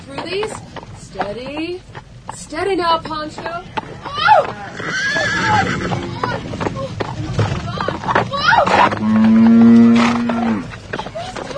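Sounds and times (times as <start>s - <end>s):
speech: 0.1s - 7.5s, 8.1s - 9.9s
horse whinnying: 4.0s - 6.5s, 8.4s - 10.7s
noisy crowd of farm animals calling: 4.0s - 6.5s, 8.0s - 10.8s.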